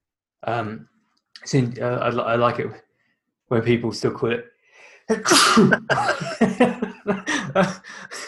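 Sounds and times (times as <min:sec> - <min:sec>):
speech: 0:00.4 - 0:02.9, 0:03.5 - 0:04.5, 0:05.1 - 0:08.2
loud sneeze: 0:05.2 - 0:05.9
laughter: 0:05.6 - 0:08.2.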